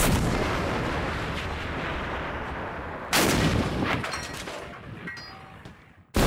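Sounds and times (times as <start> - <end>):
cannon shots booming with rolling rumble: 0.0 - 5.0.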